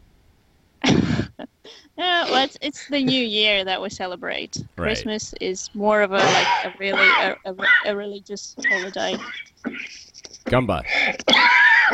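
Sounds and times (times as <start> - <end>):
speech: 2.0 - 9.4, 10.5 - 11.5
harsh raspy coughing fit: 6.2 - 7.8, 8.6 - 11.9.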